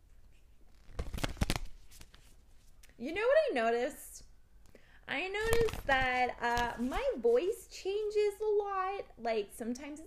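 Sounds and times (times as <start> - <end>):
riffle of playing cards being shuffled for a self-care card pull: 0.3 - 3.0, 5.4 - 7.2
speech: 3.0 - 4.2, 5.1 - 10.0.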